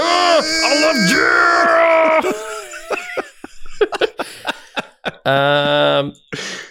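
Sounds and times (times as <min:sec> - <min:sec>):
person screaming into the microphone: 0:00.0 - 0:02.4
laughter: 0:00.5 - 0:06.2
choppy breathy gasps: 0:04.2 - 0:04.8, 0:06.3 - 0:06.7
speech: 0:05.3 - 0:06.6.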